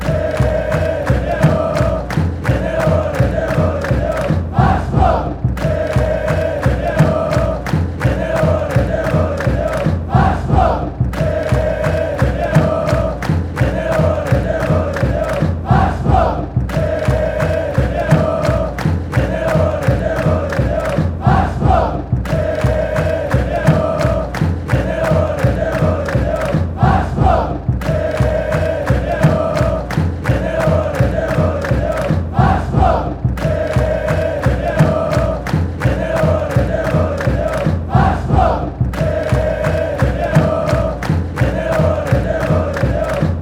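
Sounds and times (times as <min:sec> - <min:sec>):
football fans chanting: 0:00.0 - 0:43.4.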